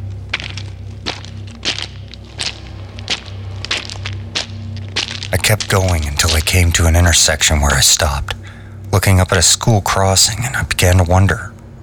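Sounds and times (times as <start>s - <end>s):
footsteps on a hard street beside stores in fog: 0.0s - 7.0s
low hum: 0.0s - 11.8s
speech: 5.3s - 11.5s.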